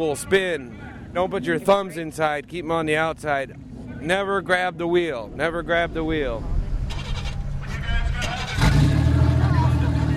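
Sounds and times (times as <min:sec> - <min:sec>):
speech: 0:00.0 - 0:06.5
several car engines starting and revving after a driving lesson: 0:04.9 - 0:10.1.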